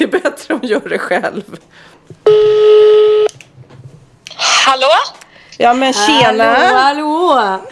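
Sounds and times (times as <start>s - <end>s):
speech: 0.1s - 3.4s, 4.4s - 7.7s
phone line outgoing call tone beep: 2.3s - 3.3s.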